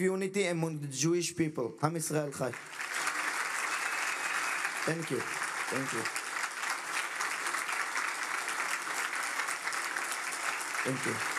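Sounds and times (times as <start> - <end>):
speech: 0.0 - 2.9, 4.8 - 6.2, 10.8 - 11.3
crowd applause: 2.4 - 11.3.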